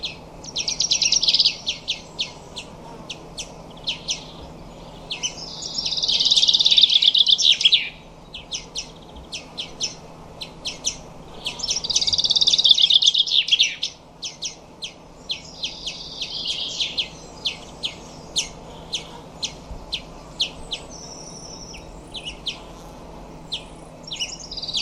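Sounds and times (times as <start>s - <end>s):
bird song of high rapid trills and twittering: 0.0s - 24.8s
low steady hum: 0.0s - 24.8s.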